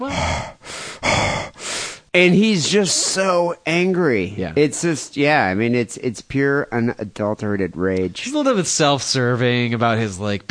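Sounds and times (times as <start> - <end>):
voice imitating angry heavy breathing of phone calls: 0.0 - 2.2
speech: 2.1 - 10.4.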